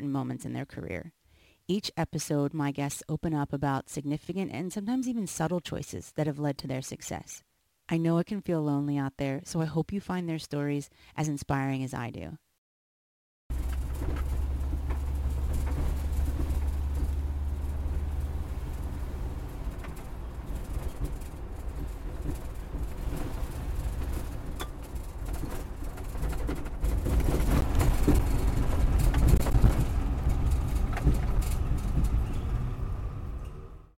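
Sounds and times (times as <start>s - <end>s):
speech: 0.0s - 12.4s
orange 1970s vintage Volkswagen Combi microbus engine drone and road rumble in Melbourne: 13.5s - 33.9s.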